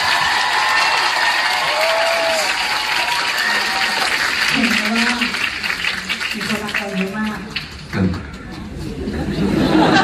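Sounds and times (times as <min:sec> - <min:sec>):
faint cheering: 0:00.0 - 0:04.2
large audience applauding: 0:00.0 - 0:08.5
laughter: 0:08.7 - 0:10.0.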